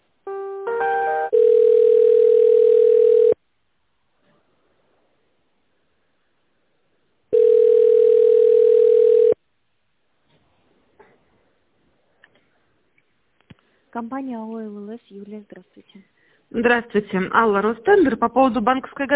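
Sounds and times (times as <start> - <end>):
telephone line tone while a call is being transferred: 0.7 - 3.4, 7.3 - 9.4
speech: 14.0 - 19.1.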